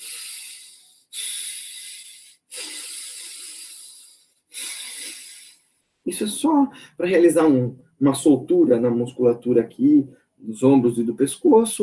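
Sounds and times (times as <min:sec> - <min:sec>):
forceful breathing through nostrils: 0:00.0 - 0:05.8
speech: 0:06.0 - 0:11.8.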